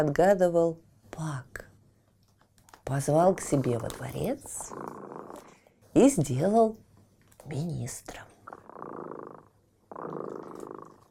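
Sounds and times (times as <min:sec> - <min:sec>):
speech: 0:00.0 - 0:01.6, 0:02.9 - 0:06.8, 0:07.4 - 0:10.9
cat purring: 0:03.2 - 0:05.6, 0:07.9 - 0:11.1.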